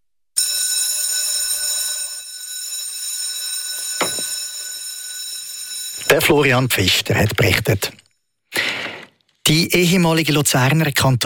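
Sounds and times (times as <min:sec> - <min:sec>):
electric school bell ringing: 0:00.4 - 0:07.1
speech: 0:06.1 - 0:08.0, 0:09.5 - 0:11.2.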